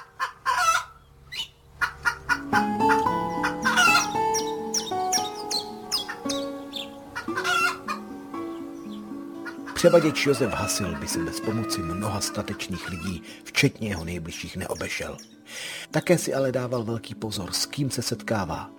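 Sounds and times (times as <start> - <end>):
hens clucking: 0.0 - 13.2
steady tonal bed: 1.2 - 10.2
speech: 2.5 - 3.0, 9.8 - 18.7.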